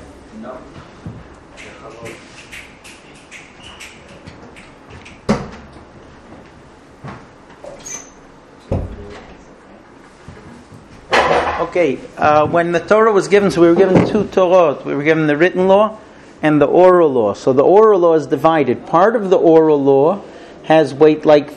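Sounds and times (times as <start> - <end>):
people shuffling during a Torah class: 0.0 - 7.8, 9.0 - 11.1
speech: 0.4 - 2.5, 11.8 - 21.5
door closing with a sharp knock: 3.3 - 5.9, 7.6 - 9.4.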